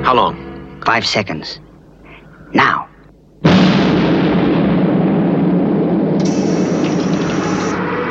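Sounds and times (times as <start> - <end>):
speech: 0.1 - 1.7, 2.5 - 2.8
loud explosion blowing open a vault door: 3.4 - 8.1.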